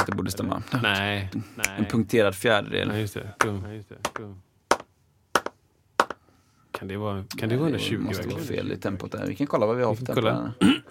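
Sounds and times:
speech: 0:00.0 - 0:04.4, 0:06.8 - 0:10.8
hands clapping a rhythm: 0:03.4 - 0:06.2.

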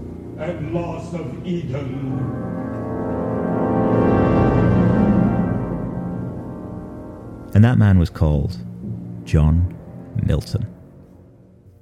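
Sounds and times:
modern opera with sustained low orchestral tone: 0:00.0 - 0:11.8
speech: 0:00.4 - 0:02.8, 0:07.6 - 0:08.7, 0:09.3 - 0:10.8.

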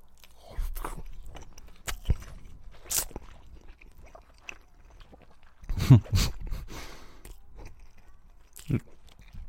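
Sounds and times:
ASMR chewing of scrambled egg: 0:00.0 - 0:09.4.

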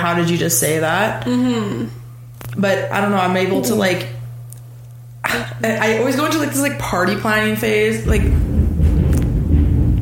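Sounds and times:
speech: 0:00.0 - 0:02.0, 0:02.6 - 0:04.2, 0:05.3 - 0:08.5
thunder rumbling during a storm: 0:08.0 - 0:10.0.

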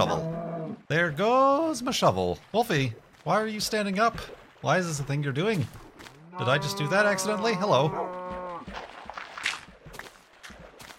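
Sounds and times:
speech: 0:00.9 - 0:08.3
cow outside giving a short low moo: 0:06.2 - 0:08.6.

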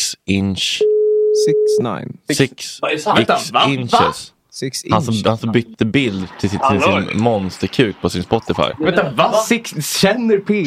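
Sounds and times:
speech: 0:00.3 - 0:10.6
telephone ringing tone while someone places a call: 0:00.8 - 0:01.7.

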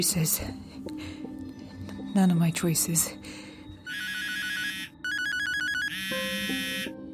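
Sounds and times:
speech: 0:00.0 - 0:01.2, 0:02.1 - 0:03.5
telephone ringing with warbling electronic trill: 0:03.8 - 0:07.0.

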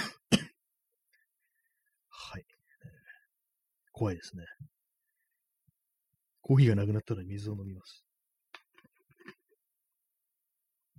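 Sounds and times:
harsh coughs in a short coughing fit: 0:00.0 - 0:00.6
speech: 0:04.0 - 0:04.7, 0:06.4 - 0:08.0.

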